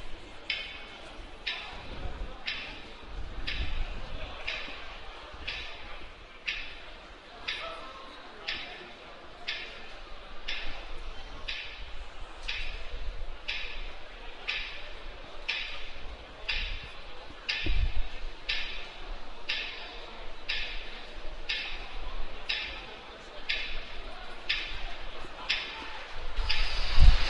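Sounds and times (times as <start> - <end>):
faint voices: 0.0 - 27.2
murmur of a large crowd in a stadium: 0.0 - 27.2
clock ticking: 0.4 - 4.8, 5.4 - 7.8, 8.5 - 8.9, 9.5 - 27.2.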